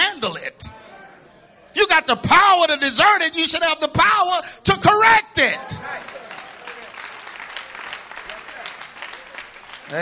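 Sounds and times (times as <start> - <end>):
speech: 0.2 - 0.8, 2.0 - 6.1
audience clapping: 5.8 - 9.9.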